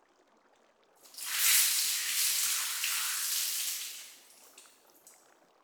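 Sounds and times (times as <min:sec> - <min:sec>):
water rinsing over a person's head during a hair wash at a hot spring: 0:01.0 - 0:05.2.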